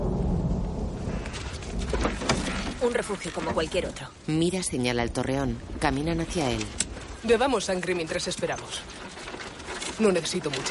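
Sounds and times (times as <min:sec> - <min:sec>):
deep rolling thunder from an approaching storm: 0:00.0 - 0:08.4
rain-like hiss: 0:00.0 - 0:10.6
sharp thunder crackles: 0:00.0 - 0:10.6
speech: 0:02.8 - 0:09.0, 0:10.0 - 0:10.6.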